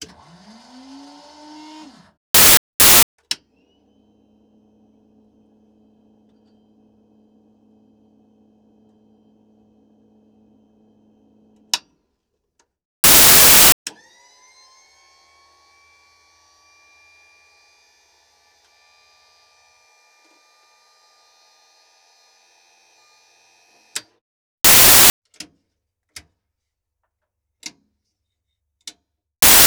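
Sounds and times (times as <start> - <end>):
buttons and switches in a North American P-51D Mustang cockpit: 2.4 - 3.0, 13.0 - 13.8, 24.7 - 25.1, 29.4 - 29.6.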